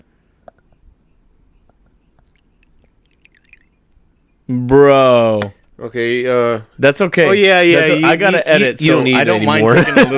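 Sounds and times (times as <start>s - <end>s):
liquor trickling into a shot glass: 2.2s - 4.1s
speech: 4.5s - 10.1s
laughter: 7.4s - 10.1s.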